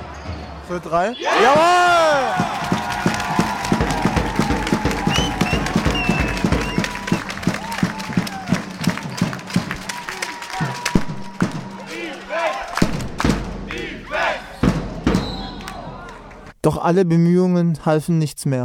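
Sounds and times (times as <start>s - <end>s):
speech: 0.7s - 2.6s, 16.6s - 18.6s
basketball arena crowd cheering and roaring: 1.1s - 16.5s
shouting voices in a basketball arena: 1.2s - 12.8s, 13.7s - 14.6s
squeaks on a basketball court: 15.1s - 15.6s.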